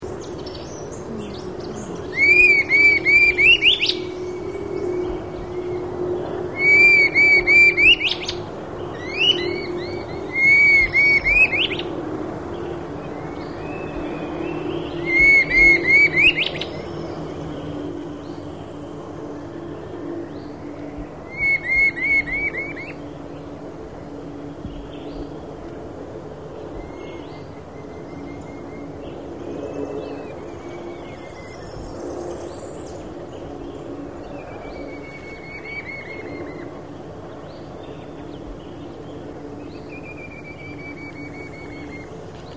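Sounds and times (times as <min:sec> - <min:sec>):
Red-billed Scythebill Campylorhamphus trochilirostris singing: 0:00.0 - 0:42.5.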